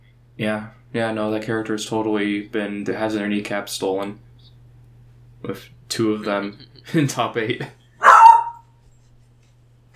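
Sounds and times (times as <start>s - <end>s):
faint low hum: 0.0s - 9.9s
speech: 0.4s - 4.3s, 5.4s - 7.8s
dog barking: 8.0s - 8.7s.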